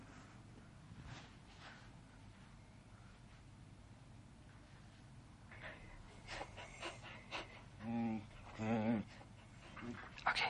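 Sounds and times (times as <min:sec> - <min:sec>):
dog panting: 0:05.5 - 0:10.4.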